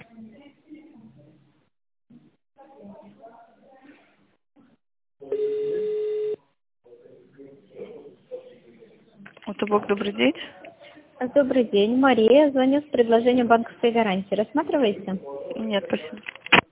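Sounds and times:
telephone line beep on a company's automated phone line: 5.3 - 6.4
speech: 9.7 - 10.6, 11.2 - 16.3.

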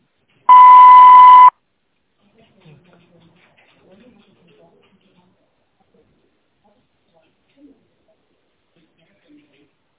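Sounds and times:
voicemail beep tone after a forwarded call: 0.5 - 1.5.

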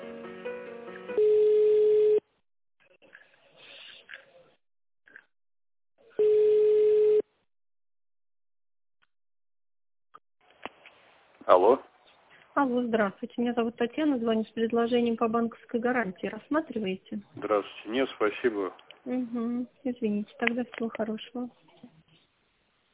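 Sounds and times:
telephone line tone while a call is being connected: 1.2 - 2.2, 6.2 - 7.3
speech: 12.6 - 21.7.

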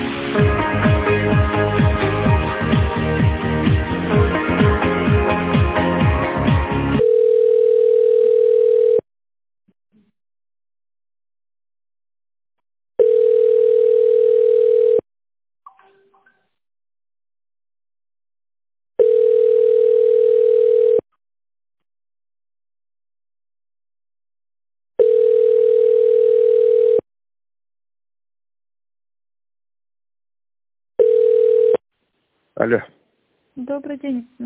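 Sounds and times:
telephone hold music: 0.0 - 7.0
telephone ringing tones during call transfer: 7.0 - 9.0, 13.0 - 15.0, 19.0 - 21.0, 25.0 - 27.0, 31.0 - 31.8
speech: 33.8 - 34.4.

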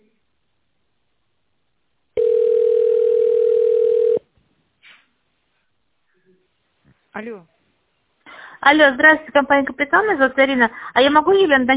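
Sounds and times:
telephone ringing tone while call is transferred to an operator: 2.2 - 4.3
speech: 7.2 - 7.6, 8.6 - 11.7.

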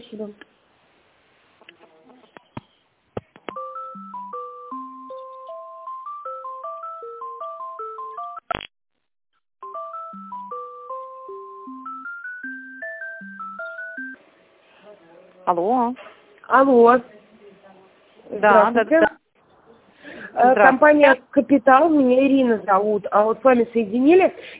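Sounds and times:
speech: 0.2 - 0.5, 15.5 - 17.1, 18.4 - 19.1, 20.4 - 24.5
electronic melody of beeping tones over a phone line: 3.5 - 8.5, 9.6 - 14.2.

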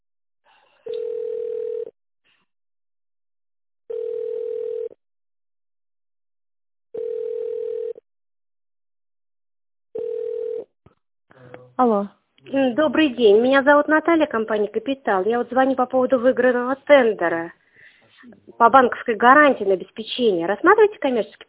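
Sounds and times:
telephone ringback tone while a call is being connected: 0.9 - 1.9, 3.9 - 5.0, 7.0 - 8.0, 10.0 - 10.7
speech: 11.8 - 17.6, 18.2 - 21.4.

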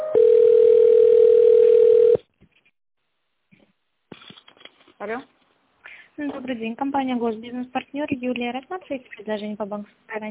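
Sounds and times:
telephone tones while a call is transferred: 0.1 - 2.2
speech: 6.5 - 10.2.

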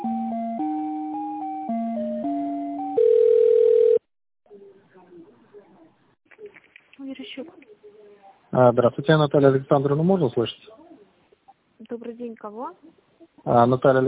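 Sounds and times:
longer steady telephone line tone: 0.0 - 4.0
speech: 8.6 - 10.8, 12.5 - 14.0.

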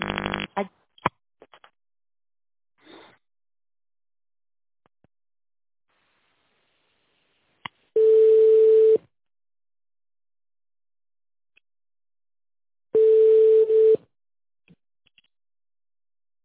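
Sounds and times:
telephone busy signal tones: 8.0 - 9.0, 13.0 - 14.0.

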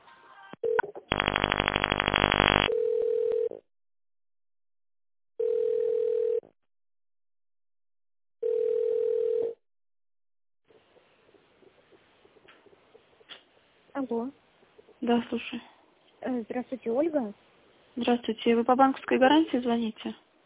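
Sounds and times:
telephone ringback tone while an office call is transferred: 0.6 - 3.6, 5.4 - 6.4, 8.4 - 9.6
harsh buzzing telephone tone: 1.1 - 2.7
speech: 15.1 - 15.7, 16.3 - 20.2.

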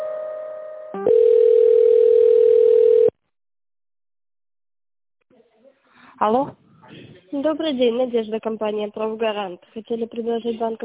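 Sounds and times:
telephone line tones while a call is transferred: 1.0 - 3.2
speech: 6.2 - 6.6, 7.4 - 10.8.

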